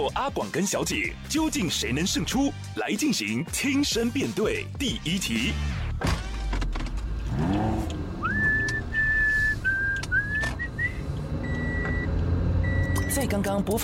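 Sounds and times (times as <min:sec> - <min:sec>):
speech: 0:00.0 - 0:06.2, 0:13.2 - 0:13.8
car engine cranking and idling: 0:05.6 - 0:13.8
person whistling a short tune: 0:08.2 - 0:11.1.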